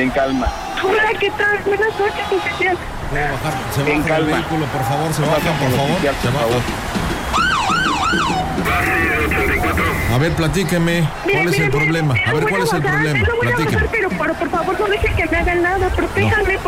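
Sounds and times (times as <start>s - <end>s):
speech: 0.0s - 16.6s
police patrol car siren wailing: 7.0s - 14.0s.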